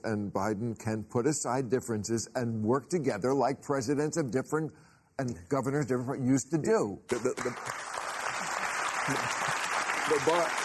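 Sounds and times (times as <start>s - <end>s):
speech: 0.0s - 7.8s, 9.1s - 10.6s
studio audience clapping: 7.1s - 10.6s.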